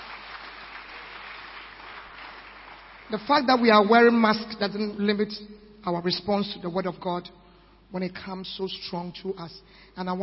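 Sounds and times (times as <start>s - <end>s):
audience clapping: 0.0s - 3.2s
speech: 3.1s - 10.2s.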